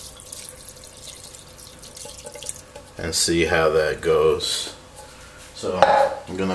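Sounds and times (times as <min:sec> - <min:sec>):
tap water filling an emptied tomato sauce can: 0:00.0 - 0:03.0
speech: 0:03.0 - 0:04.8, 0:05.6 - 0:06.5.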